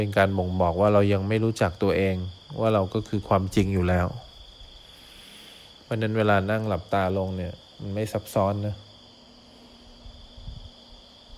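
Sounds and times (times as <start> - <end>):
speech: 0.0 - 4.3, 5.9 - 8.8
steady high-pitched insect drone: 0.0 - 11.3.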